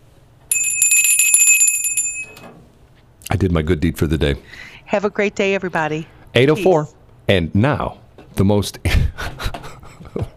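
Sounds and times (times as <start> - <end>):
bright high bell ringing in rapid trill: 0.5 - 2.5
speech: 3.4 - 9.0.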